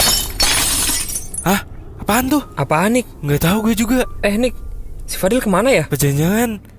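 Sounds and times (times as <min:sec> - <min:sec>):
glass shards tinkling: 0:00.0 - 0:01.5
glass shattering loudly: 0:00.0 - 0:01.6
speech: 0:01.5 - 0:06.7.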